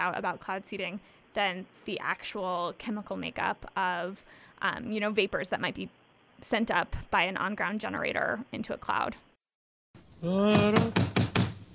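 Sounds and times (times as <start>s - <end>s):
speech: 0.0s - 9.3s, 10.2s - 11.4s
knocking on a door: 10.6s - 11.6s.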